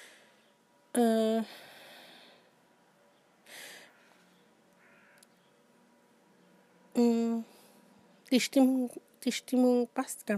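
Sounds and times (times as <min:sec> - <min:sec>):
quiet hissy background: 0:00.0 - 0:10.3
birds calling outdoors from a balcony: 0:03.1 - 0:05.7
speech: 0:07.0 - 0:07.5, 0:08.3 - 0:10.3.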